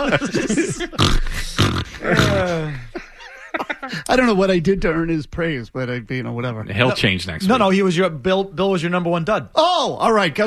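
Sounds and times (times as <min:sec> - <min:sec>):
speech: 0:00.0 - 0:01.2, 0:04.1 - 0:10.4
laughter: 0:00.0 - 0:04.4
loud snoring: 0:00.9 - 0:02.7.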